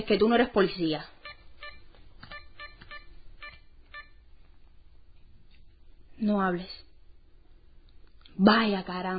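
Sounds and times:
speech: 0.0s - 1.2s, 6.2s - 6.8s, 8.4s - 9.1s
telephone keypad touch-tone beeps while dialling a call: 1.2s - 4.2s.

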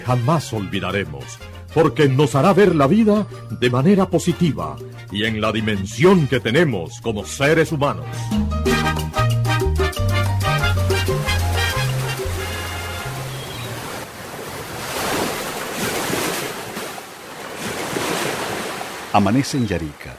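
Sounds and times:
speech: 0.0s - 9.2s, 19.1s - 20.1s
melodic music passage: 0.2s - 13.7s
gentle ocean waves breaking on the shore at dawn: 11.6s - 20.1s.

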